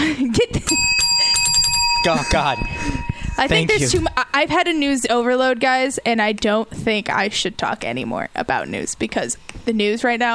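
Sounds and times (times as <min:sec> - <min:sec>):
bright metallic bell struck and ringing: 0:00.7 - 0:04.2
speech: 0:02.0 - 0:10.3.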